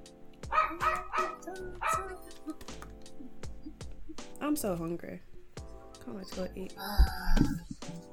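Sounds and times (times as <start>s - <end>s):
dog barking: 0.5s - 2.3s
speech: 4.4s - 5.3s, 6.1s - 8.0s.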